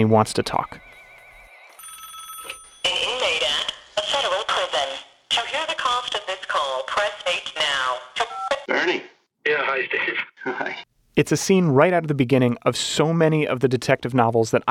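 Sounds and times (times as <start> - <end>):
speech: 0.0 - 0.9, 9.9 - 14.6
telephone ringing with a steady electronic tone: 0.5 - 3.7
voices of a broadcast playing in the room: 2.9 - 10.9.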